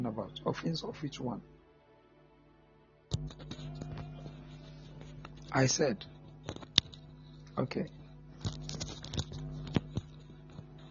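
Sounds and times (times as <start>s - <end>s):
speech: 0.0s - 1.6s, 3.2s - 3.8s, 5.5s - 6.2s, 7.6s - 8.6s
steady low electrical hum: 0.0s - 10.8s
phone-line interference crackle: 3.2s - 10.8s.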